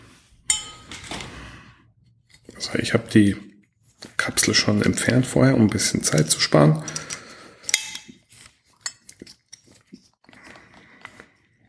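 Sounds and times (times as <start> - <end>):
sharp glassy clink: 0.5 - 0.9
speech: 2.6 - 3.5, 4.2 - 7.1.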